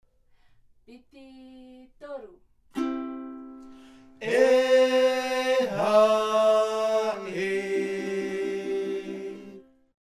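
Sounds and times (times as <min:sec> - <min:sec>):
himene ute choral singing: 0:04.2 - 0:09.7.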